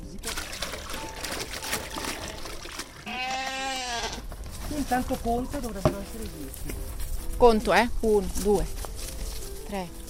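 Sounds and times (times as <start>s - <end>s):
sheep bleating in a chestnut grove in upper Sorengo: 3.0s - 4.3s
rustling and bustle: 4.2s - 10.0s
speech: 4.8s - 8.8s, 9.7s - 10.0s.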